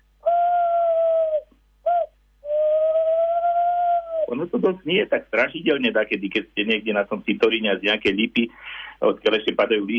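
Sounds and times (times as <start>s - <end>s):
tawny owl hooting: 0.2s - 4.6s
speech: 4.4s - 9.9s.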